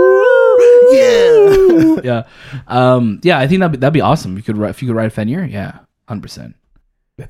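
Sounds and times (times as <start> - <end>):
person imitating wolf howl: 0.0 - 2.0
speech: 2.0 - 6.6.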